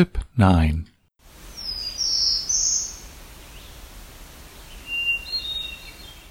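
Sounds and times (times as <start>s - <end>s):
speech: 0.0s - 0.9s
steady outdoor hiss: 0.4s - 6.3s
black-throated blue warbler and hermit thrush singing: 1.5s - 3.8s, 4.6s - 6.3s.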